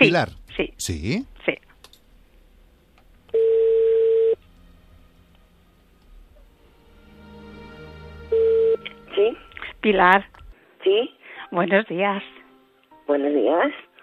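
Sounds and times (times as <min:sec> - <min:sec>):
speech: 0:00.0 - 0:01.3, 0:09.8 - 0:12.4, 0:13.1 - 0:13.9
telephone ringback tone while a call is being placed: 0:03.3 - 0:04.4.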